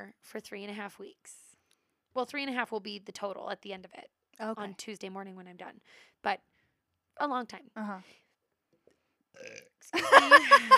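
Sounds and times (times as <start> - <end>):
speech: 0.0 - 1.4, 2.1 - 6.5, 7.2 - 8.2, 9.4 - 10.7
loud burp with low guttural rumble: 9.4 - 9.8.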